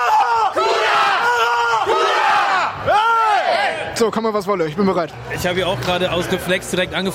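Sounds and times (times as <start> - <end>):
team of men and women shouting a battle cry: 0.0 - 3.8
speech: 4.0 - 7.1.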